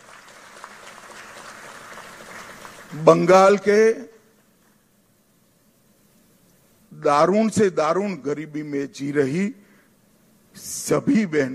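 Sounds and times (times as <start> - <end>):
large crowd clapping heard from a distance: 0.0 - 3.1
speech: 2.9 - 4.1, 7.0 - 9.6, 10.6 - 11.5.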